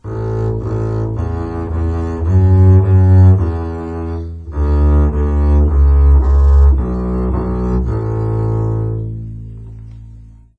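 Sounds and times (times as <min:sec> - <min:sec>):
bass twinkle: 0:00.0 - 0:10.5.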